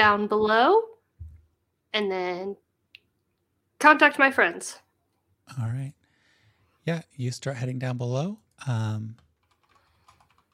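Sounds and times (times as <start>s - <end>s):
speech: 0.0s - 0.9s, 1.9s - 2.6s, 3.8s - 4.8s, 5.5s - 6.0s, 6.9s - 9.2s
typing on a computer keyboard: 9.1s - 10.5s.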